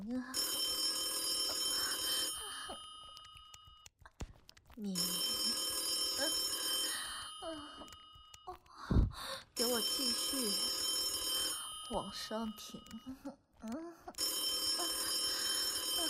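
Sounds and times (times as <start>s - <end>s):
speech: 0.1s - 0.4s, 4.8s - 5.2s, 9.8s - 10.8s, 11.9s - 13.8s
telephone ringing loudly: 0.3s - 3.9s, 5.0s - 8.5s, 9.6s - 13.1s, 14.2s - 16.0s.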